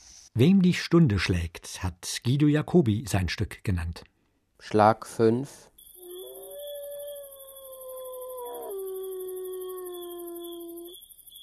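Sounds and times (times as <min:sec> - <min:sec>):
speech: 0:00.4 - 0:05.7
single wolf howling: 0:06.0 - 0:11.0.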